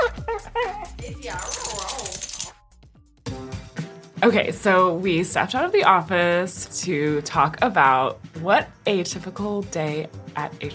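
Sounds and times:
dog whimpering and yelping in an office: 0:00.0 - 0:02.3
speech: 0:04.2 - 0:10.7.

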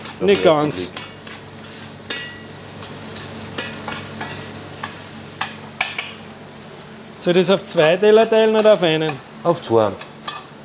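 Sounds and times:
egg with chives sizzling in a pan: 0:00.0 - 0:10.6
speech: 0:00.2 - 0:01.0, 0:07.2 - 0:10.1.

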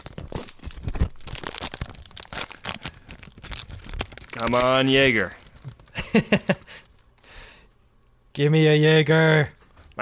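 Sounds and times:
trading card pack wrapper being torn open: 0:00.0 - 0:07.1
speech: 0:04.4 - 0:05.4, 0:06.1 - 0:06.8, 0:08.4 - 0:10.0.

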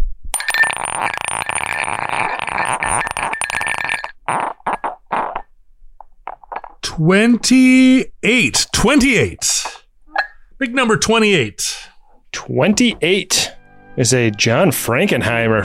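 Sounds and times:
dice rattling in a dice cup: 0:00.4 - 0:05.0
dice tumbling out of a cup and settling: 0:00.4 - 0:05.5, 0:06.0 - 0:06.8
speech: 0:04.3 - 0:04.5, 0:07.0 - 0:09.8, 0:10.6 - 0:11.9, 0:12.5 - 0:15.6.

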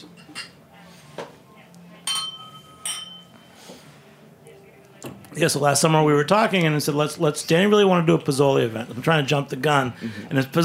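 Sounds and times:
glasses clinking together in a toast: 0:00.0 - 0:00.7, 0:02.0 - 0:03.6
speech: 0:05.4 - 0:10.6.

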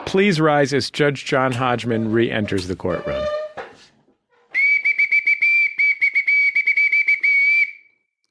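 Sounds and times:
speech: 0:00.1 - 0:03.3
bosun's whistle blown with a warbling trill: 0:04.5 - 0:08.0.

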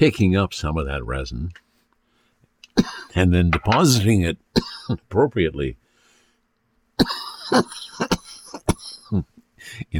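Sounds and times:
speech: 0:00.0 - 0:01.6, 0:02.8 - 0:05.8, 0:07.0 - 0:08.2, 0:09.1 - 0:09.9
person's harsh dry coughing fit: 0:02.7 - 0:03.2, 0:04.6 - 0:05.0, 0:07.0 - 0:09.4.

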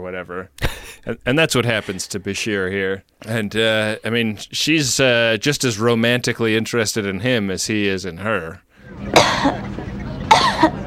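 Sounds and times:
speech: 0:00.0 - 0:09.7, 0:10.6 - 0:10.8
woman coughing: 0:09.2 - 0:09.6, 0:10.3 - 0:10.8.

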